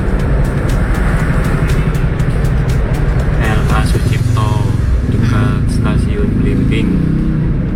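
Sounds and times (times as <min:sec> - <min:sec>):
faint rapid ticking: 0:00.0 - 0:06.0
idling bus and car engines in a two-way traffic jam: 0:00.0 - 0:07.7.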